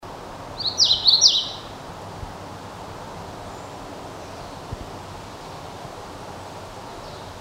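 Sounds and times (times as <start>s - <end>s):
background hiss: 0.0s - 7.4s
hooded warbler song of clear slurred whistled notes: 0.6s - 1.8s, 7.0s - 7.4s.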